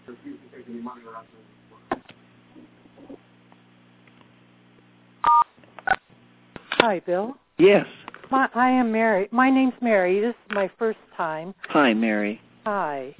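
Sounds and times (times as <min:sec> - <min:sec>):
speech: 0:00.1 - 0:03.3, 0:06.8 - 0:13.1
telephone keypad tones over a phone line: 0:05.2 - 0:05.4
quiet phone line hum: 0:05.2 - 0:06.0.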